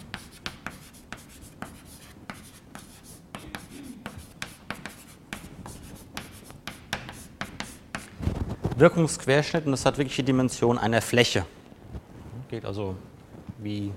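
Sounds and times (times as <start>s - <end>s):
writing on a board during a physics lecture: 0.0s - 8.2s
speech: 8.8s - 11.6s, 12.6s - 13.9s.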